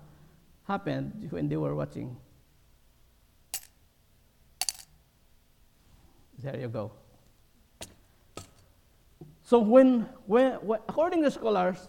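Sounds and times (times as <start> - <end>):
speech: 0.7 - 2.3, 6.4 - 7.0, 9.2 - 11.8
copper coins dropping and clinking: 3.5 - 3.8, 4.6 - 5.0.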